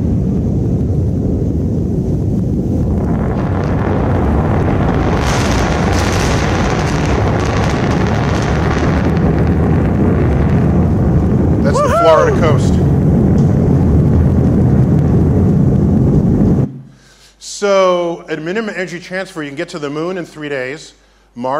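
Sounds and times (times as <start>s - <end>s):
heavy wind buffeting the microphone: 0.0s - 16.8s
loud sustained rumble: 0.0s - 17.0s
deep double sonic booms from two descending rocket boosters landing: 0.0s - 17.1s
speech: 18.3s - 21.5s.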